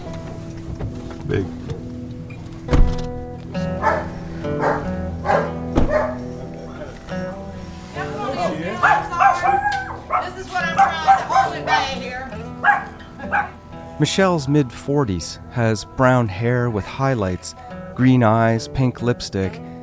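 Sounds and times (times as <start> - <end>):
speech: 0.8 - 1.7, 14.0 - 19.7
Pomeranian dog howling: 3.7 - 6.3, 8.0 - 13.6
Pomeranian rescue dog barking in high yips: 3.8 - 6.3, 8.8 - 13.6.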